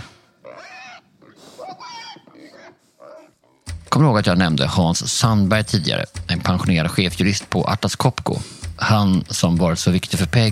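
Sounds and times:
pigs oinking and grunting: 0.0 - 3.8
speech: 4.0 - 10.5.

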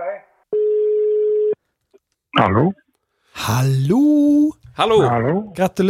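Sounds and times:
telephone ringing tone while placing a call: 0.5 - 1.6
speech: 3.5 - 5.8.

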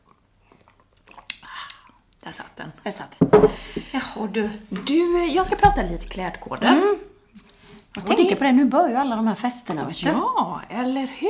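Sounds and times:
person sipping coffee: 0.0 - 2.0
speech: 2.3 - 7.1, 8.0 - 11.2.

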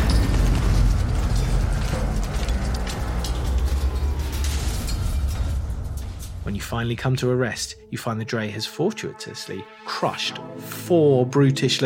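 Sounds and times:
heavy machine roaring: 0.0 - 6.3
bangs and rattles: 0.0 - 7.2
speech: 6.6 - 11.8.

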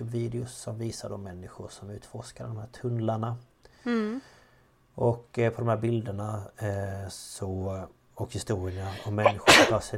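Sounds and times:
speech: 0.0 - 4.4, 5.0 - 9.9
person sneezing: 8.8 - 9.9.

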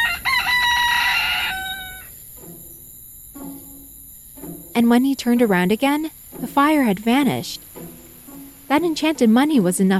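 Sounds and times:
rooster crowing: 0.0 - 2.4
faint hiss: 0.0 - 9.9
speech: 4.8 - 7.6, 8.7 - 9.9.

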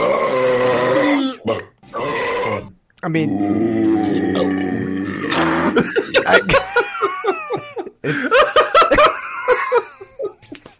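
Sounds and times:
long deep rumbling burp: 0.0 - 6.5
speech: 3.0 - 4.7, 5.7 - 7.3
several people giggling and chuckling: 5.7 - 10.7.

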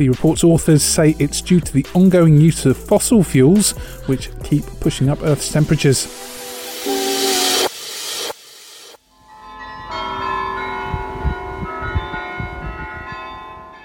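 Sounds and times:
speech: 0.0 - 6.4
loud broadband hissing: 5.2 - 9.0
church tower bells ringing a melody: 9.2 - 13.8.

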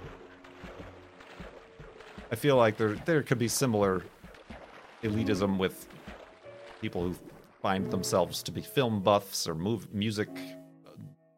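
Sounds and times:
water washing on open water: 0.0 - 9.0
speech: 2.3 - 4.2, 5.0 - 5.9, 6.8 - 10.6.

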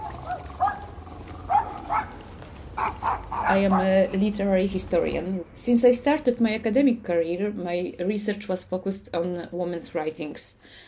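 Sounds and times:
dog barking: 0.0 - 2.2, 2.8 - 4.0
speech: 3.5 - 10.8.

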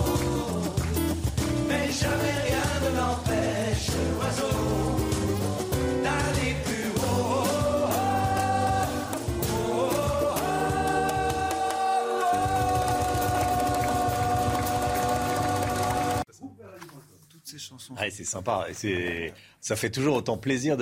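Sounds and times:
French pop song with sung vocals over bass and chords: 0.0 - 16.3
speech: 18.0 - 20.7.

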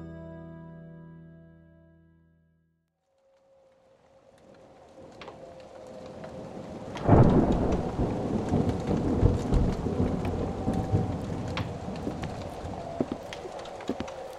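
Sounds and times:
steady dense rainfall: 3.6 - 14.3
sharp drips and patters: 4.2 - 14.3
deep thunder rumble: 4.4 - 14.3.

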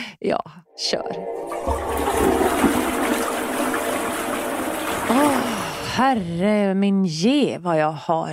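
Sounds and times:
speech: 0.2 - 2.9, 6.0 - 8.3
toilet flushing: 1.2 - 6.6.

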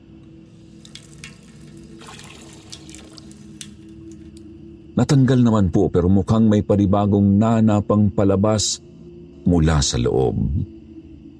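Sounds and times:
low hum: 0.0 - 11.3
water running from a tap over a wound being rinsed of pus: 0.5 - 4.4
speech: 5.0 - 10.8.

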